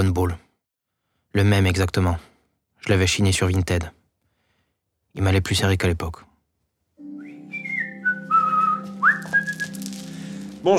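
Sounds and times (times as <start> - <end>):
speech: 0.0 - 0.4, 1.3 - 4.0, 5.2 - 6.3
man whistling a casual meandering tune: 7.0 - 9.9.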